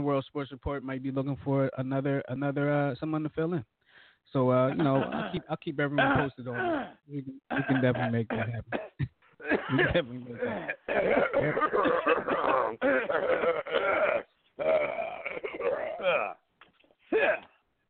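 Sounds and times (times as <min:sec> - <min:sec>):
speech: 0:00.0 - 0:15.0
person clearing their throat: 0:04.7 - 0:16.4, 0:17.1 - 0:17.6.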